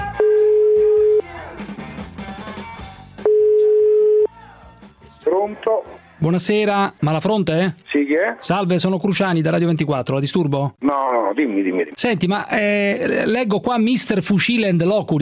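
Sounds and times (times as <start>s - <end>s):
telephone ringback tone while placing a call: 0.2s - 1.2s, 3.2s - 4.3s
speech: 6.3s - 15.2s.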